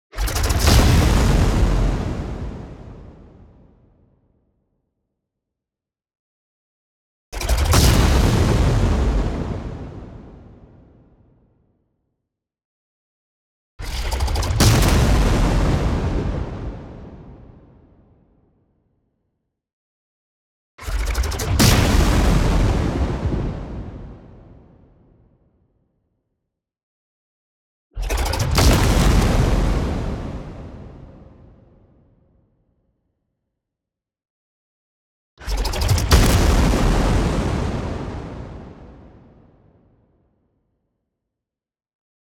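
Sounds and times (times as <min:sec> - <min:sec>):
long explosion with noise lead-in and distortion tail: 0:00.2 - 0:03.7, 0:07.4 - 0:11.1, 0:14.0 - 0:18.0, 0:21.0 - 0:25.0, 0:28.1 - 0:31.7, 0:35.5 - 0:39.8.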